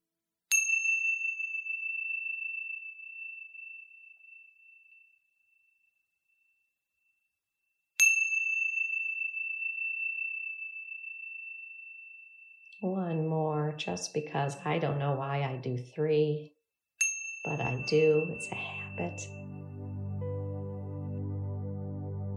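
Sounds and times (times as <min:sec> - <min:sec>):
meditation chime ringing: 0:00.6 - 0:06.7, 0:08.0 - 0:12.8, 0:17.0 - 0:21.6
speech: 0:12.8 - 0:16.6, 0:17.4 - 0:19.4.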